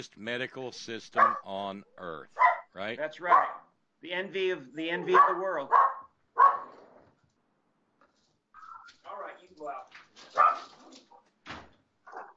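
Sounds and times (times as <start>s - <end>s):
speech: 0.0s - 6.0s
dog barking and yipping: 1.2s - 1.4s, 2.4s - 3.7s, 5.0s - 6.8s, 10.3s - 10.8s, 12.1s - 12.3s.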